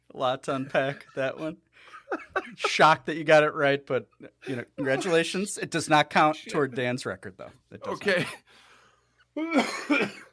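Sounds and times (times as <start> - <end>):
speech: 0.2 - 8.6, 9.4 - 10.2
laughter: 0.6 - 3.0
harsh coughs: 9.4 - 10.3.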